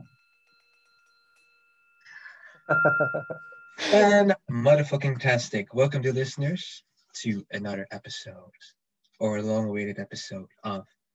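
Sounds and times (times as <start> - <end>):
soft bell chime: 0.0 - 4.2
speech: 2.7 - 11.0.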